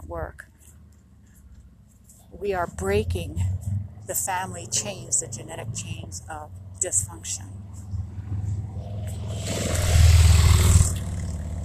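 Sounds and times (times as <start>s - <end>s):
speech: 0.1s - 0.5s, 2.4s - 7.8s
motorcycles roaring past: 2.4s - 11.6s.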